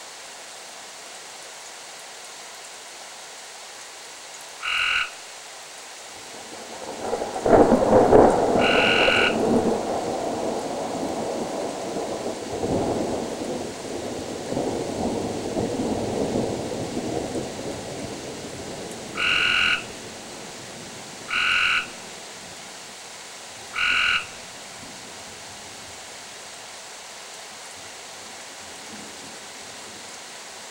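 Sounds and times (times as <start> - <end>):
frogs croaking: 4.4 - 5.4, 6.0 - 24.7
thunder: 6.5 - 20.2.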